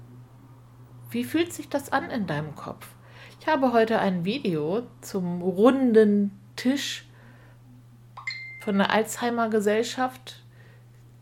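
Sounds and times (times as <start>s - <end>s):
steady low hum: 0.0s - 11.2s
speech: 1.1s - 7.1s, 8.7s - 10.4s
mobile phone notification beep: 8.2s - 8.8s.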